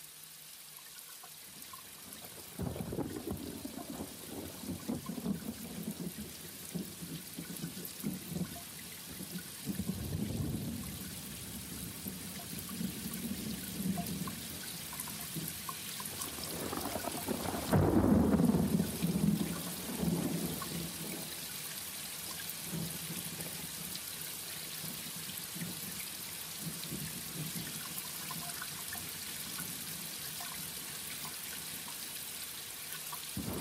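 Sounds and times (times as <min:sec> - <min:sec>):
rain hissing: 0:00.0 - 0:33.6
thunder rumbling: 0:02.6 - 0:08.6, 0:09.2 - 0:14.4, 0:16.1 - 0:21.2, 0:33.4 - 0:33.6.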